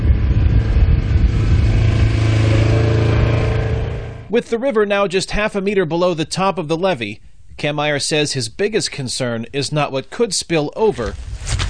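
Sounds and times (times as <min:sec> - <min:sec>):
all-terrain vehicle engine droning while driving along a levee beside the Illinois River: 0:00.0 - 0:04.4
speech: 0:04.3 - 0:11.6.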